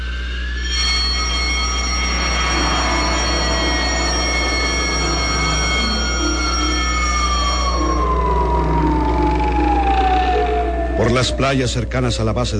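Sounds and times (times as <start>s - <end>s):
base-wide general-alarm sirens wailing: 0.0s - 12.5s
speech: 11.2s - 12.5s.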